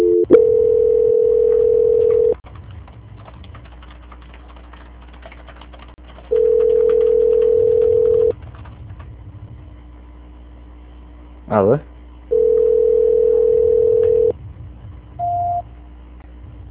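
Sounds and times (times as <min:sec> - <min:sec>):
phone line hum: 0:00.0 - 0:02.4, 0:06.3 - 0:08.4, 0:12.3 - 0:14.4, 0:15.2 - 0:15.7
telephone call-transfer tone: 0:00.0 - 0:02.4, 0:06.3 - 0:08.3, 0:12.3 - 0:14.3.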